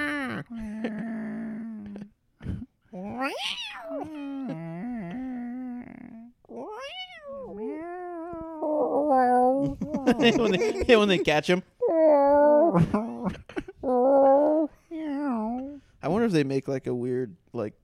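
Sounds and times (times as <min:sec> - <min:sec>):
person imitating a cat meowing: 0:00.0 - 0:02.0, 0:03.0 - 0:10.6, 0:11.8 - 0:13.2, 0:13.8 - 0:15.8
speech: 0:03.2 - 0:03.8, 0:10.2 - 0:11.7, 0:12.8 - 0:13.6, 0:16.3 - 0:17.8
laughter: 0:09.8 - 0:11.5.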